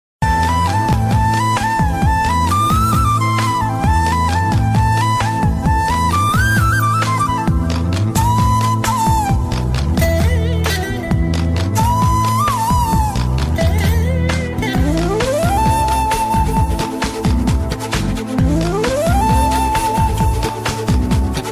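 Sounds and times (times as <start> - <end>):
flute ringtone: 0.2 - 11.1, 11.8 - 21.4.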